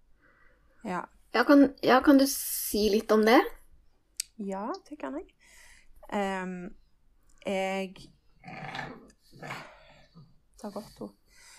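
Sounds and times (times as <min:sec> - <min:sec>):
speech: 0:00.8 - 0:03.6, 0:04.4 - 0:06.8, 0:07.4 - 0:09.8, 0:10.6 - 0:11.2
pug grunting and breathing noisily on a downhill slope: 0:08.4 - 0:11.0.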